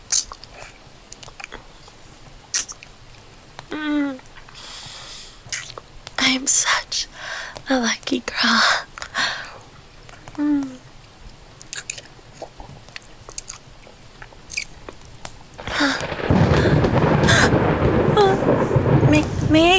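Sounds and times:
rain pattering: 0:00.0 - 0:19.7
soft mouth sounds: 0:00.1 - 0:02.9, 0:03.7 - 0:05.8, 0:11.6 - 0:14.8
faint breaths: 0:00.4 - 0:00.9, 0:04.4 - 0:05.5, 0:06.6 - 0:07.7, 0:08.5 - 0:10.6, 0:15.6 - 0:17.6
speech: 0:06.4 - 0:08.8
low rumble of thunder: 0:15.6 - 0:19.7.

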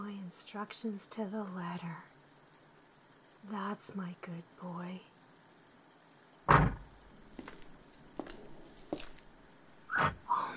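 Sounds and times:
speech: 0:00.3 - 0:02.1, 0:03.4 - 0:05.1
door opening with a loud thump as a roommate arrives: 0:06.5 - 0:06.9
soft footsteps or knocks: 0:06.5 - 0:10.2.

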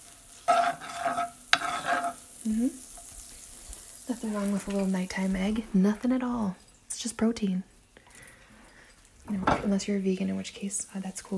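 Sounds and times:
butter sizzling in a pan as it is rolled around in a circle: 0:00.0 - 0:11.3
stirring scrape with brief clinks in a pan: 0:00.5 - 0:02.2
speech: 0:02.4 - 0:02.9, 0:04.1 - 0:07.7, 0:09.3 - 0:11.3.

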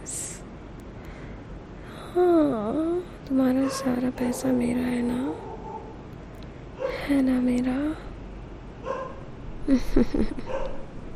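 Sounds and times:
speech: 0:02.1 - 0:05.5, 0:07.1 - 0:08.1, 0:09.7 - 0:10.6
dog barking outside: 0:05.4 - 0:05.9, 0:08.8 - 0:09.2, 0:10.5 - 0:10.9.

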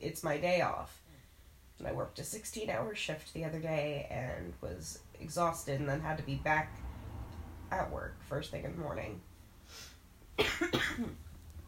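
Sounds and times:
speech: 0:00.0 - 0:01.0, 0:01.8 - 0:06.9, 0:07.7 - 0:11.2
person coughing: 0:10.4 - 0:11.2.

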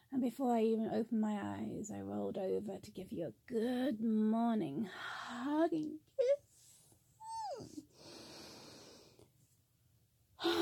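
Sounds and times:
speech: 0:00.2 - 0:06.4
breathy exhale: 0:07.9 - 0:09.2
person yawning: 0:10.4 - 0:10.5.

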